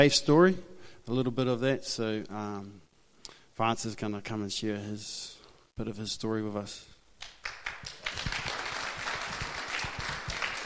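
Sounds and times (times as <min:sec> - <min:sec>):
speech: 0:00.0 - 0:02.8, 0:03.6 - 0:07.6
audience clapping: 0:07.2 - 0:10.6.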